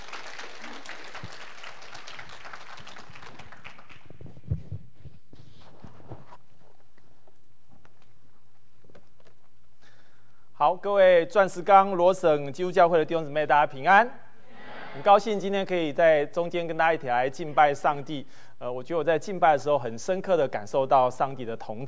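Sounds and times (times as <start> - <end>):
audience applause welcoming a speaker: 0.0 - 4.1
scattered claps: 0.0 - 4.4
shuffling in a room: 4.1 - 9.8
speech: 10.6 - 14.2, 15.0 - 21.8.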